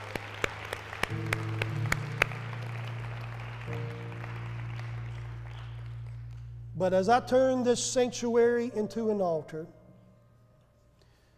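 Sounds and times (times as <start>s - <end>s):
audience clapping in praise in a church sanctuary: 0.0s - 6.7s
steady low sustained organ-like tone: 1.2s - 9.7s
speech: 6.8s - 9.8s.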